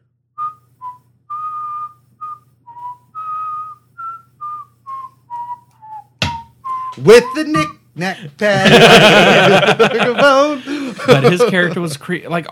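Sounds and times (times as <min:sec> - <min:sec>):
low hum: 0:00.0 - 0:06.9
man whistling a nursery-style melody: 0:00.4 - 0:07.7
speech: 0:07.0 - 0:12.5
laughter: 0:08.5 - 0:12.0.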